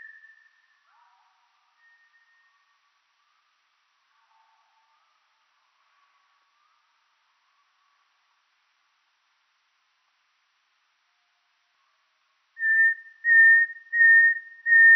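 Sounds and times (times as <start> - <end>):
wren song pitched down two octaves: 12.6 - 14.9.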